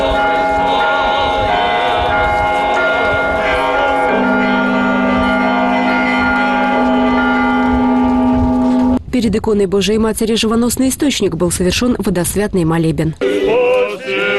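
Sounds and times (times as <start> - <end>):
church bells ringing in a layered peal: 0.0 - 9.0
speech: 9.2 - 14.2.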